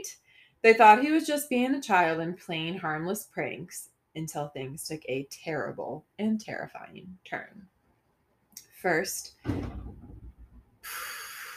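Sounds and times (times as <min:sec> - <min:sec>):
speech: 0:00.0 - 0:07.7, 0:08.8 - 0:09.8
door opening or shutting with a heavy thump: 0:09.4 - 0:10.7.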